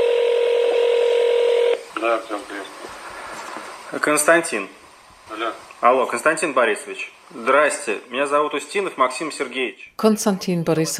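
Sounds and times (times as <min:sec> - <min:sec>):
buzzing telephone tone: 0:00.0 - 0:01.8
speech: 0:02.0 - 0:03.0, 0:03.9 - 0:10.9.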